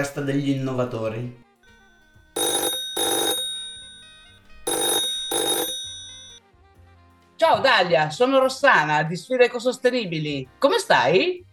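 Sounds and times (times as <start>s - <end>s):
telephone ringing tone of an outgoing call: 0.0s - 1.0s, 1.7s - 6.4s
speech: 0.0s - 1.4s, 7.4s - 11.5s.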